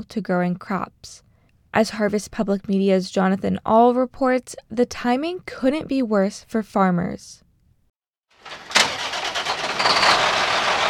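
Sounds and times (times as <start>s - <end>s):
speech: 0.0s - 7.4s
farmer's truck engine cranking and idling at a grain elevator in St. Louis, Missouri: 8.4s - 10.8s.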